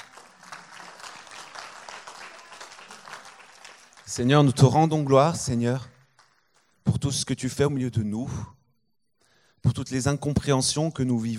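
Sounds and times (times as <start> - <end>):
congregation applauding during a church service: 0.0 - 6.8
speech: 4.1 - 5.9, 7.1 - 8.6, 9.6 - 11.3.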